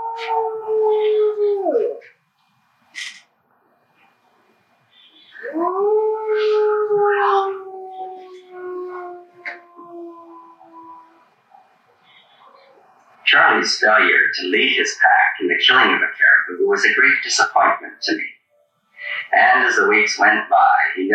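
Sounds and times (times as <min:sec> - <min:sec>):
wolves howling in a played video: 0:00.0 - 0:02.0, 0:05.4 - 0:13.6
speech: 0:00.2 - 0:01.2, 0:13.6 - 0:18.4, 0:19.3 - 0:21.1.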